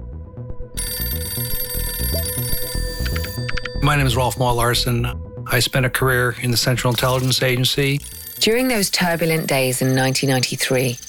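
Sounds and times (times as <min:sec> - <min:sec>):
low music: 0:00.0 - 0:08.1
telephone ringing: 0:00.8 - 0:05.0, 0:06.4 - 0:11.0
speech: 0:03.9 - 0:11.0.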